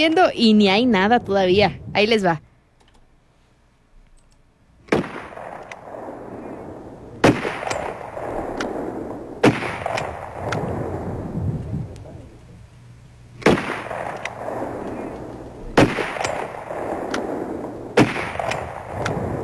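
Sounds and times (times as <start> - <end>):
speech: 0.0 - 2.5
gunshots with rumbling echo: 4.8 - 12.4, 13.3 - 19.4.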